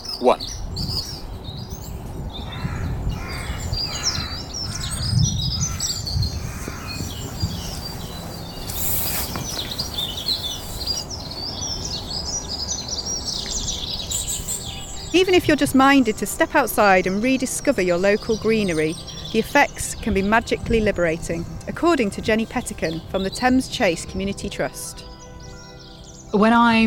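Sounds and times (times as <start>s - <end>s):
birds chirping in a forest: 0.0s - 26.8s
speech: 0.2s - 0.6s, 15.2s - 25.0s, 26.3s - 26.8s
crows cawing in a forest: 2.4s - 8.0s.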